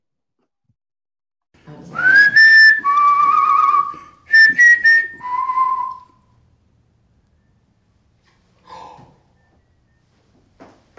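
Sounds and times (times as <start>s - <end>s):
person whistling bright sliding phrases: 2.0s - 6.3s.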